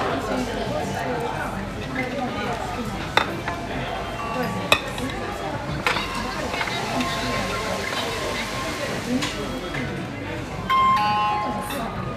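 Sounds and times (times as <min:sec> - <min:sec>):
murmur of many voices in a sushi restaurant: 0:00.0 - 0:12.1
dishes or utensils clinking: 0:03.0 - 0:08.4.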